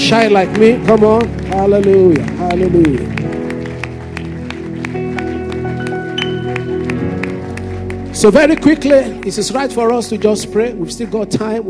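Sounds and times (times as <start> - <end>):
speech: 0.0 - 3.4, 8.2 - 11.6
audience clapping hands: 0.0 - 11.5
sustained droning music: 0.0 - 11.6.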